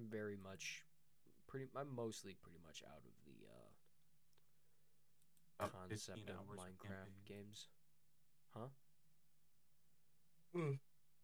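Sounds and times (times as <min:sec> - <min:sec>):
speech: 0:00.0 - 0:00.9, 0:01.5 - 0:03.8, 0:05.6 - 0:07.8, 0:08.5 - 0:08.8, 0:10.5 - 0:10.9
person yawning: 0:10.6 - 0:10.8.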